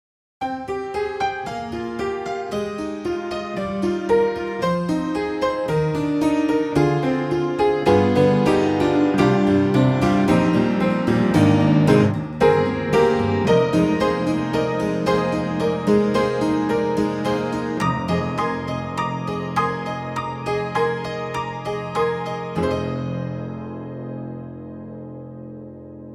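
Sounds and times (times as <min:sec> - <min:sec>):
honky tonk upright piano: 0:00.4 - 0:26.1.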